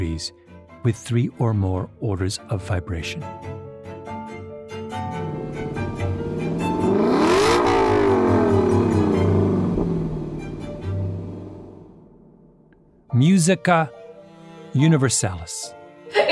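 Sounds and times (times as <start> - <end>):
speech: 0.2 - 3.6, 13.2 - 14.0, 14.8 - 15.8
LC sports car engine revving and accelerating past: 5.2 - 12.7.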